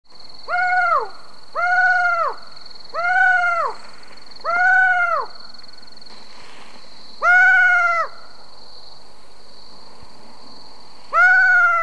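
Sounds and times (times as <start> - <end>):
Ninox connivens calling: 0.4 - 8.4, 11.1 - 11.8.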